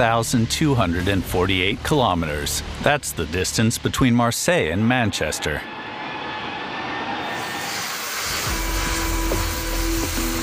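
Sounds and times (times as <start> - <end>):
speech: 0.0 - 5.9
welding of steel hull sheets in a shipyard: 7.1 - 10.4.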